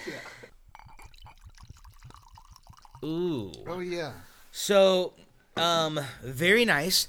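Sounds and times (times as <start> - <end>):
whiskey glugging from a bottle into a glass: 0.1 - 4.4
speech: 3.0 - 7.0.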